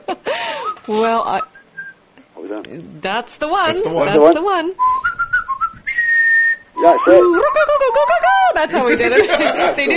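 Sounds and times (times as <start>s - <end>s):
person whistling a movie theme tune: 0.5s - 2.0s, 4.8s - 7.5s
speech: 0.9s - 1.5s, 2.5s - 5.0s, 6.8s - 9.9s
laughter: 6.8s - 9.9s.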